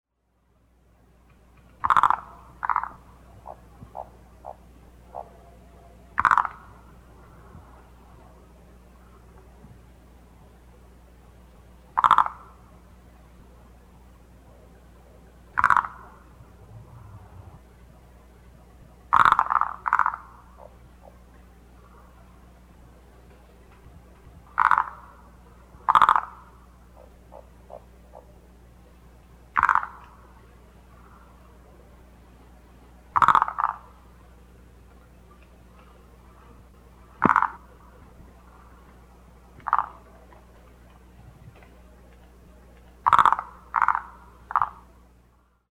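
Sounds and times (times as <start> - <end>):
Phyllomedusa tetraploidea calling: 1.8 - 8.3, 11.9 - 13.0, 14.4 - 18.1, 19.1 - 22.2, 24.5 - 28.5, 29.5 - 31.4, 33.1 - 34.2, 36.9 - 38.8, 39.6 - 40.2, 43.0 - 45.0.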